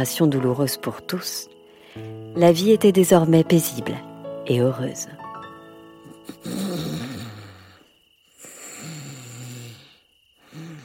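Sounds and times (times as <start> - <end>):
speech: 0.0 - 5.2
heavy rumbling snoring: 6.3 - 10.8.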